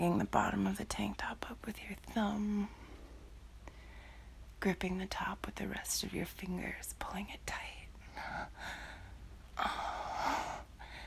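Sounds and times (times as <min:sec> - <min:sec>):
speech: 0:00.0 - 0:02.8, 0:04.6 - 0:08.9, 0:09.6 - 0:10.6
heavy breathing at the ear: 0:08.1 - 0:11.0.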